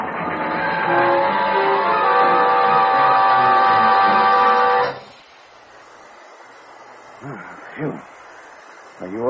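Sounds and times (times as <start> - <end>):
freight train brakes screeching: 0.0 - 5.5.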